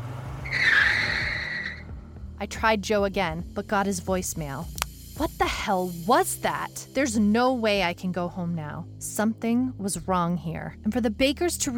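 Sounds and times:
car tires screeching: 0:00.0 - 0:02.2
speech: 0:02.4 - 0:11.7.

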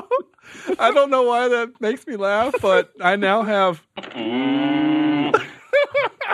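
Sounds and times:
laughter: 0:00.0 - 0:01.3, 0:02.3 - 0:03.0, 0:05.3 - 0:06.3
speech: 0:00.5 - 0:04.7
person imitating a cow mooing: 0:04.1 - 0:05.4.

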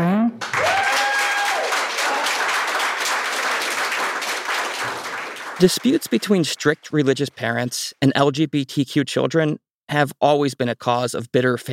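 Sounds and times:
audience applause: 0:00.4 - 0:06.8
speech: 0:05.6 - 0:11.7.

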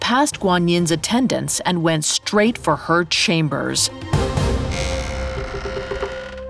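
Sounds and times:
speech: 0:00.1 - 0:04.4
wooden door creaking open: 0:04.5 - 0:06.4.

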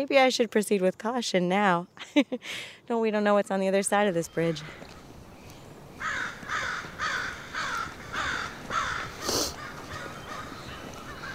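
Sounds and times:
speech: 0:00.0 - 0:04.9
faint outdoor background: 0:00.0 - 0:11.3
crow cawing: 0:06.0 - 0:11.3.

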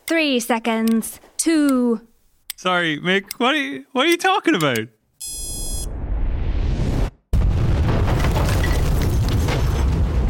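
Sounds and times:
speech: 0:00.1 - 0:05.0
bar exploding into a fireball with a deep roaring boom: 0:05.9 - 0:10.2.

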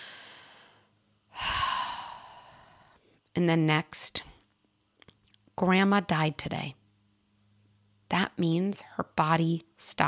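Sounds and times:
deep breath: 0:00.0 - 0:03.2
speech: 0:03.4 - 0:04.3, 0:05.6 - 0:06.8, 0:08.1 - 0:10.0.

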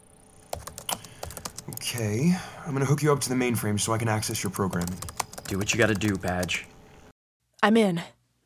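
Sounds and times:
typing on a computer keyboard: 0:00.5 - 0:02.1, 0:04.2 - 0:06.7
speech: 0:01.8 - 0:06.7, 0:07.6 - 0:08.4.

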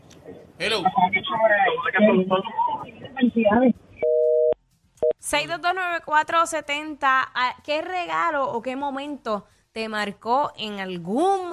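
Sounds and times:
speech: 0:00.6 - 0:03.9, 0:05.3 - 0:11.5
telephone busy tone after dropped call: 0:04.0 - 0:04.6.

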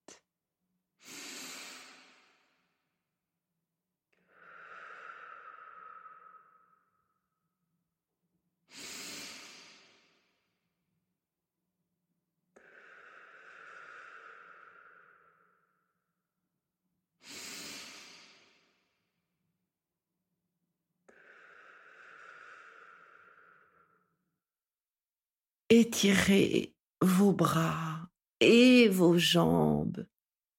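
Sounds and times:
deep breaths with loud airy inhales and softer exhales: 0:01.0 - 0:03.0, 0:04.2 - 0:07.5, 0:08.6 - 0:10.8, 0:12.5 - 0:16.1, 0:17.2 - 0:19.2, 0:21.1 - 0:24.3
speech: 0:25.7 - 0:30.1.

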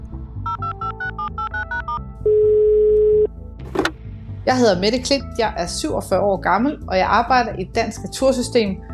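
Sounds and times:
phone keypad dialing beeps: 0:00.5 - 0:03.3
ringing tone of an outgoing phone call: 0:00.5 - 0:03.3
brief click after outgoing call ringing tone: 0:01.0 - 0:03.3
speech: 0:04.5 - 0:08.9.

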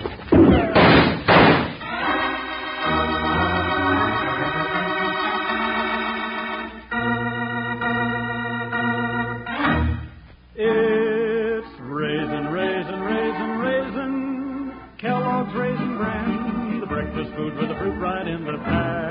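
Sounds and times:
door yanked open with banging thuds: 0:00.0 - 0:02.0
sustained organ-like music: 0:00.0 - 0:19.1.

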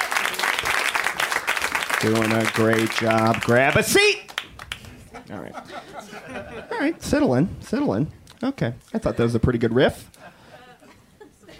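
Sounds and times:
crowd applauding loudly: 0:00.0 - 0:05.1
speech: 0:02.0 - 0:04.3, 0:05.3 - 0:10.2
laughter: 0:04.8 - 0:07.1, 0:09.0 - 0:11.5.

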